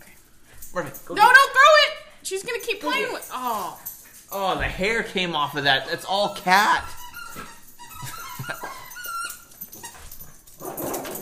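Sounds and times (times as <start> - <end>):
speech: 0.7 - 1.6, 2.3 - 7.0
dog whimpering and yelping: 6.3 - 10.4.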